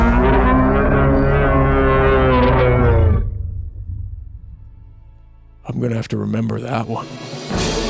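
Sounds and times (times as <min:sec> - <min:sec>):
bipedal wolf creature bellowing roar: 0:00.0 - 0:03.4
low rumbling: 0:00.0 - 0:05.8
speech: 0:05.8 - 0:07.7.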